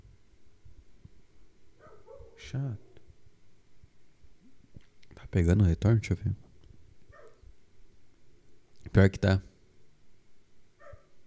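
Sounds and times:
dog barking: 1.8s - 3.0s, 7.1s - 7.5s, 10.8s - 11.2s
speech: 2.4s - 2.9s, 5.3s - 6.4s, 9.0s - 9.5s.

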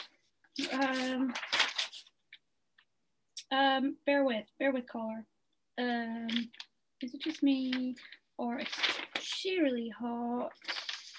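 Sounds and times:
paper sheets being shuffled: 0.0s - 2.4s, 6.2s - 11.1s
speech: 0.6s - 1.5s, 3.5s - 10.8s.

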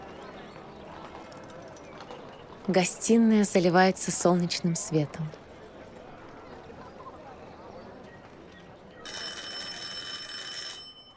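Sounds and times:
speech: 2.7s - 5.4s
electric doorbell ringing in the front hall: 9.1s - 11.1s.

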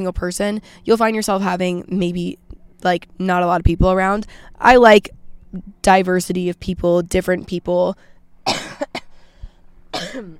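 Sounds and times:
speech: 0.0s - 9.0s, 10.1s - 10.3s
person coughing up mucus: 8.5s - 9.1s, 9.9s - 10.3s
throat clearing: 10.0s - 10.3s.

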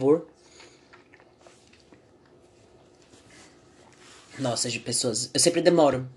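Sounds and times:
speech: 0.0s - 0.3s, 4.4s - 6.1s
person sipping and swallowing water: 0.2s - 4.4s.

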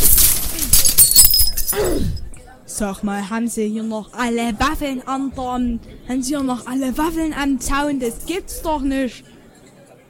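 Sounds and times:
glass shards clinking: 0.0s - 1.8s
crates of glass bottles thrown and shattering: 0.0s - 1.9s
speech: 2.8s - 9.3s.

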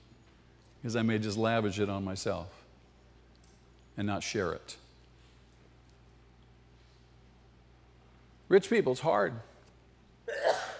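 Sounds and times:
speech: 0.8s - 2.6s, 4.0s - 4.8s, 8.5s - 9.5s
sneeze: 10.3s - 10.7s.

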